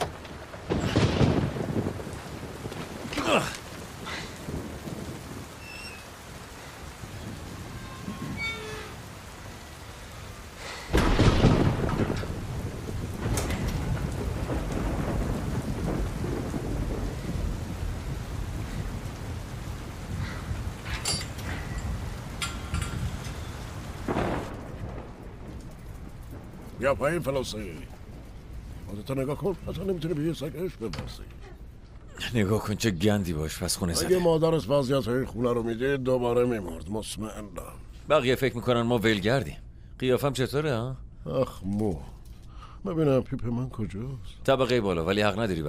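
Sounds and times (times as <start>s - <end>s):
loud rumbling thunder cracks: 0.0s - 30.4s
heavy rain: 0.0s - 42.8s
speech: 3.3s - 3.6s, 26.8s - 28.0s, 29.0s - 31.5s, 32.3s - 42.1s, 42.8s - 45.6s.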